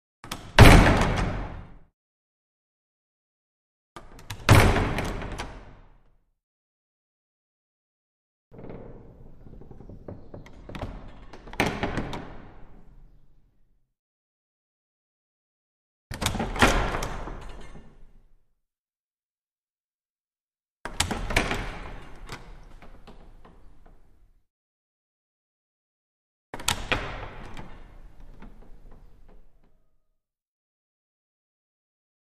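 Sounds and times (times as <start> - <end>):
small wooden chapel door crash slamming: 0.3 - 1.8, 4.2 - 5.8, 8.6 - 12.9, 16.1 - 18.0, 26.6 - 29.8.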